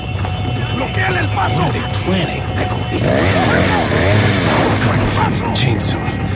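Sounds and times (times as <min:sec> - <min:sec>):
voices shouting in a video game: 0:00.1 - 0:05.5
speech: 0:01.4 - 0:06.2
chainsaw wielded by an enemy villager in a video game revving: 0:03.0 - 0:04.9.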